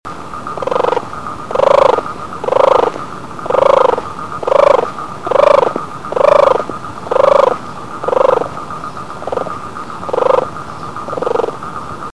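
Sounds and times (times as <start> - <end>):
turtle voice: 0.4 - 12.1.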